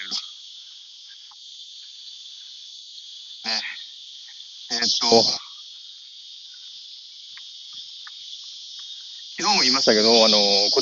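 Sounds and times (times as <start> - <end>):
cicadas droning: 0.0 - 10.8
speech: 4.8 - 5.4, 9.6 - 10.8.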